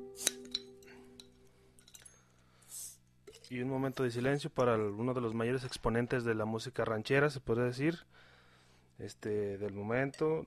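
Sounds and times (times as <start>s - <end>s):
brief hiss of a beer bottle being opened: 0.1s - 0.6s, 2.7s - 3.0s
sharp glass clink: 0.2s - 2.3s
speech: 3.5s - 8.3s, 9.0s - 10.4s.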